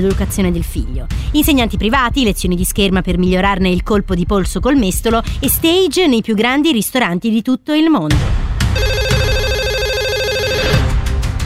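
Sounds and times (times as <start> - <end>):
speech: 0.0 - 8.9
telephone ringing with a warbling electronic trill: 8.8 - 10.9.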